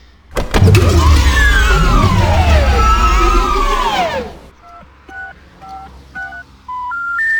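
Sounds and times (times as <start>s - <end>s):
loud roaring whining rumble: 0.3s - 4.5s.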